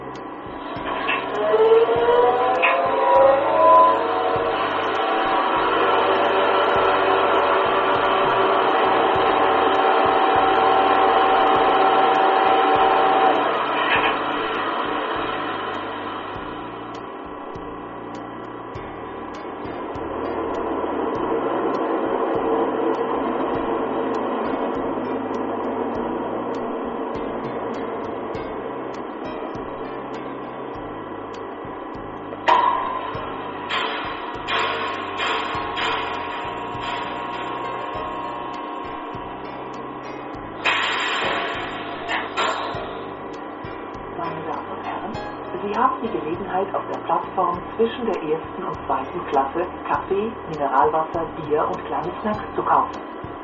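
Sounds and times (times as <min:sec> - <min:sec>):
constant ventilation-like whoosh: 0:00.0 - 0:53.4
interior hum of an idle Regio Express train: 0:00.0 - 0:53.4
low train engine drone: 0:00.0 - 0:53.4
speech: 0:50.5 - 0:53.1.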